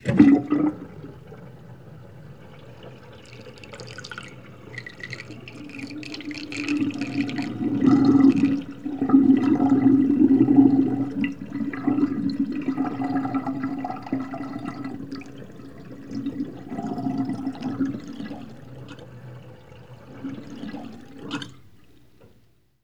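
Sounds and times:
bath water draining: 0:00.0 - 0:22.5.

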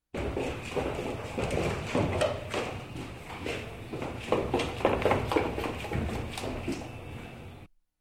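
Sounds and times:
people walking down stairs: 0:00.1 - 0:07.6.

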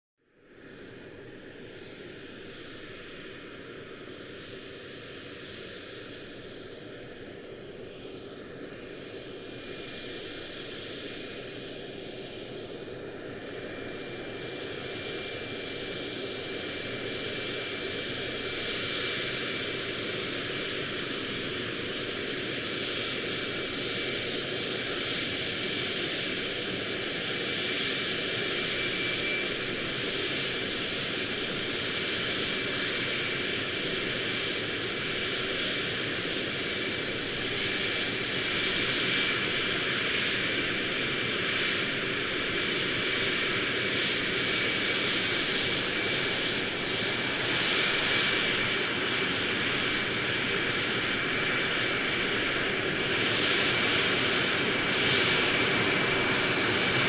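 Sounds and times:
aircraft rolling on the ground: 0:11.8 - 0:57.0.

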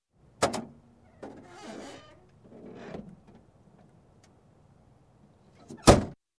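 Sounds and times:
old trunk opening and closing: 0:00.4 - 0:03.6, 0:05.6 - 0:06.2.

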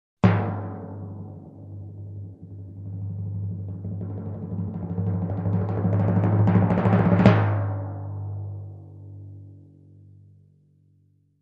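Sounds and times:
long timpani roll: 0:00.2 - 0:08.2.

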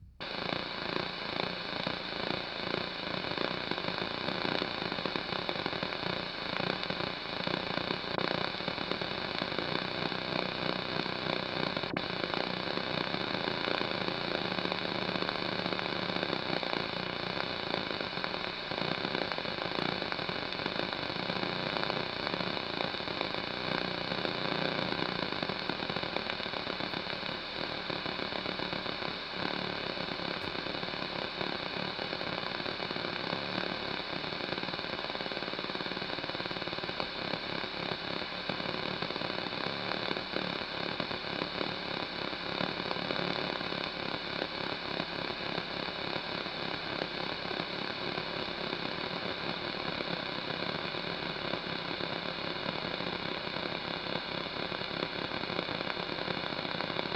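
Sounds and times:
TV static noise: 0:00.0 - 0:57.1.

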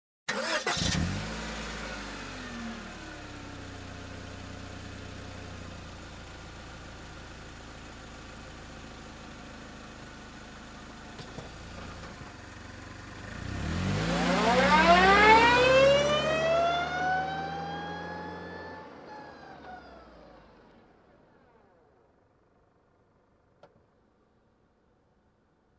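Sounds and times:
car reversing: 0:00.3 - 0:07.3, 0:09.3 - 0:22.0
car engine ignition: 0:00.3 - 0:23.9.

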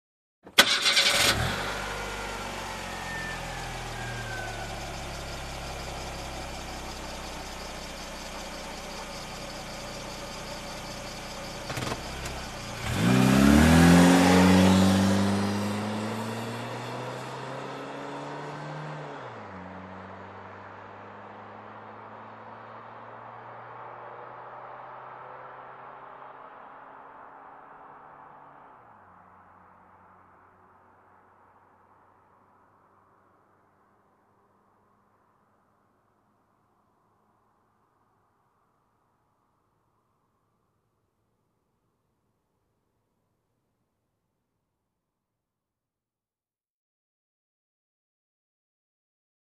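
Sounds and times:
car engine starting and driving away: 0:00.5 - 0:35.5.

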